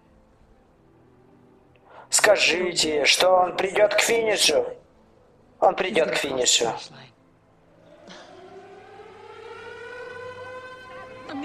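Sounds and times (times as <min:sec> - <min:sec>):
speech: 0:02.1 - 0:04.8, 0:05.6 - 0:07.1
siren wailing: 0:07.8 - 0:11.4.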